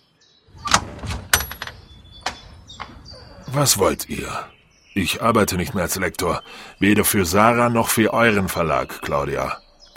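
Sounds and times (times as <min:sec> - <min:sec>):
door opening with soft rumbling scrape: 0:00.5 - 0:03.6
door lock or latch clicking: 0:00.6 - 0:03.2
door mechanism clunking: 0:00.6 - 0:03.3
speech: 0:03.5 - 0:09.9.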